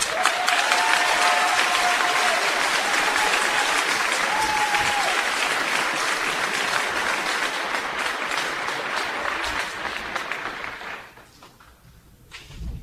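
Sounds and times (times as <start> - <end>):
faint whistles and cheers: 0.0 - 5.5
large audience applause: 0.0 - 11.4.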